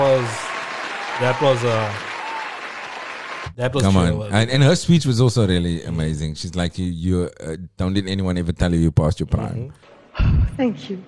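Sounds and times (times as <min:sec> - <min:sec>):
sustained whooping voices: 0:00.0 - 0:03.0
crowd cheering and applauding: 0:00.0 - 0:04.2
speech: 0:00.2 - 0:00.5, 0:01.2 - 0:02.1, 0:03.6 - 0:11.0.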